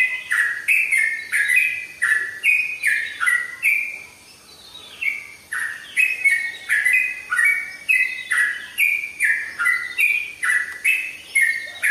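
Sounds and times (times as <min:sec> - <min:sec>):
Oriental magpie-robin singing: 0:00.0 - 0:11.8.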